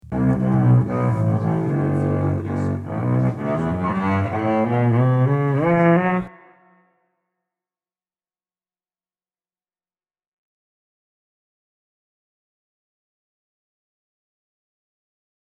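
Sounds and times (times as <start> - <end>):
bowed arco string samples: 0.0 - 7.0.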